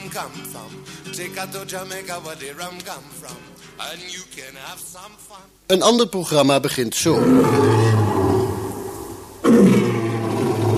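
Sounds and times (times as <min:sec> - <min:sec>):
speech: 0:00.1 - 0:08.4
lion roaring: 0:07.1 - 0:10.7.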